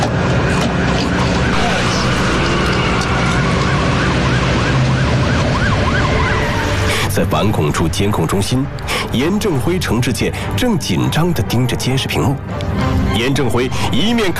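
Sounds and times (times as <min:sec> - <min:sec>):
police car sirens wailing: 0:00.0 - 0:09.2
police car engines starting and rumbling: 0:00.0 - 0:14.3
road noise: 0:00.0 - 0:14.3
speech: 0:07.2 - 0:14.3.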